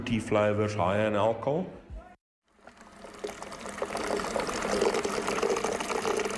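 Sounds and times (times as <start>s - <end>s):
speech: 0.0s - 1.8s
water pouring into a container for beer brewing: 2.5s - 6.3s.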